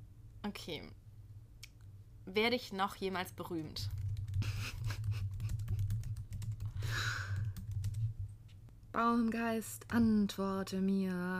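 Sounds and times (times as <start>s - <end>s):
low constant hum: 0.0s - 11.3s
speech: 0.4s - 1.0s, 2.3s - 4.5s, 9.0s - 11.3s
keys clicking on a computer keyboard as someone types: 3.8s - 8.2s
brief breathy sigh: 6.7s - 7.5s.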